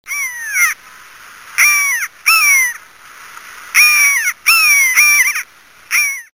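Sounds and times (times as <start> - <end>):
buzzard calling: 0.1 - 0.8, 1.6 - 2.8, 3.7 - 6.3.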